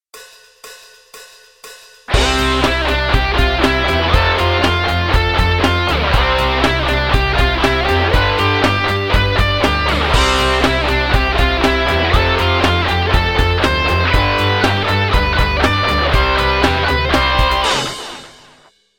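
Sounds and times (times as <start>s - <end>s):
drum kit: 0.0s - 18.7s.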